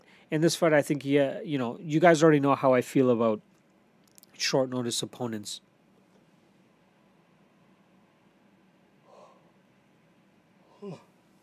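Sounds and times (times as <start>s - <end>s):
speech: 0.3s - 3.5s, 4.4s - 5.7s, 10.8s - 11.0s
person yawning: 9.1s - 9.4s, 10.7s - 11.1s.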